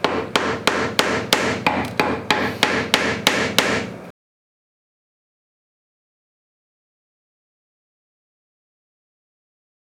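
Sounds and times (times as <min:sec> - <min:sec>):
mallet striking wood chisel: 0:00.0 - 0:04.0.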